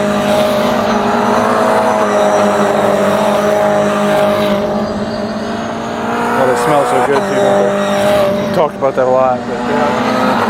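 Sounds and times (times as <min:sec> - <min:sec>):
race car engine roaring past on a hill at a race track: 0:00.0 - 0:10.4.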